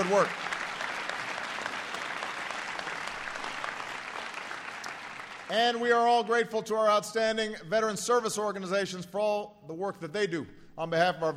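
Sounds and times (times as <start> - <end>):
speech: 0.0 - 0.5, 5.5 - 11.3
large audience applause: 0.0 - 5.6.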